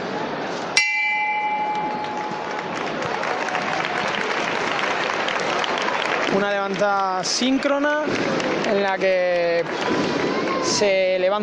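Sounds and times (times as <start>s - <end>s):
murmur of crowd noise: 0.0s - 11.4s
church bell stroke signalling bearers of a Holy Week procession float in Jaén: 0.8s - 2.5s
speech: 6.4s - 11.4s.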